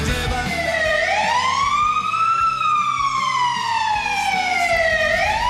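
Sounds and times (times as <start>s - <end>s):
emergency vehicle siren sounding during large summer wildfires in Spain: 0.1s - 5.4s.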